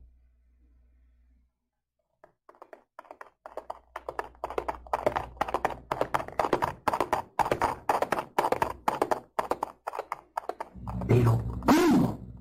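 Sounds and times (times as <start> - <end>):
galloping horse hoofbeats: 2.2 - 11.7.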